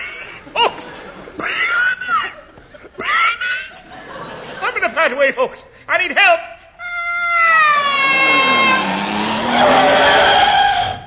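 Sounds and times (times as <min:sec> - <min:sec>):
laughter: 0:00.5 - 0:05.0
speech: 0:05.1 - 0:06.5
motor car tyres skidding: 0:07.8 - 0:11.0
motor car engine rumbling: 0:08.0 - 0:11.0.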